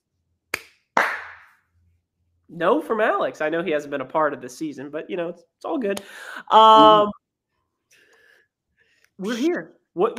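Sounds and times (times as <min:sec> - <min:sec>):
sharp hand claps in a quiet room: 0:00.5 - 0:01.6
speech: 0:02.5 - 0:07.2, 0:09.2 - 0:10.1.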